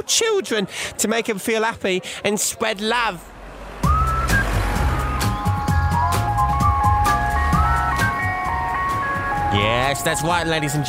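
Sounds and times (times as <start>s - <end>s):
speech: 0.0s - 3.4s, 9.6s - 10.8s
ice cream van jingle: 3.1s - 10.8s
low engine rumble of ice cream van: 3.1s - 10.8s.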